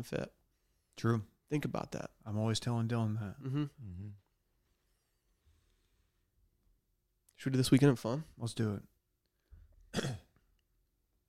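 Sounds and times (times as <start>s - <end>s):
speech: 0.0s - 0.4s, 1.0s - 4.2s, 7.4s - 8.9s, 9.9s - 10.2s
harsh cough: 9.9s - 10.4s
throat clearing: 9.9s - 10.4s.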